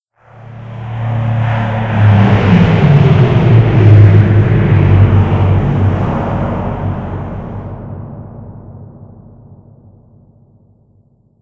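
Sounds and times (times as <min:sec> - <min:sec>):
flyby: 0:00.2 - 0:08.0.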